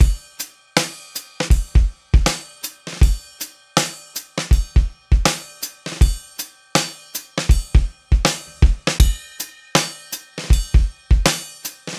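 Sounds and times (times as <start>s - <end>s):
live trip hop acoustic drum loops: 0.8s - 3.2s, 3.8s - 6.2s, 6.8s - 9.2s, 9.8s - 11.9s.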